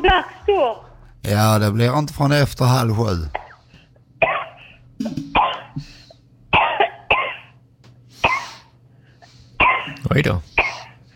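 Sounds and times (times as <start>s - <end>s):
speech: 0.0s - 3.4s, 10.1s - 10.5s
harsh coughing fit: 3.3s - 7.6s, 8.2s - 8.8s, 9.6s - 11.0s.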